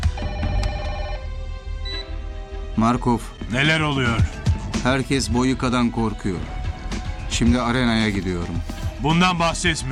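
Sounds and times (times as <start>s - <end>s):
telephone ringing with a trilling electronic burst: 0.2s - 2.1s
speech: 2.8s - 6.6s, 7.3s - 9.9s.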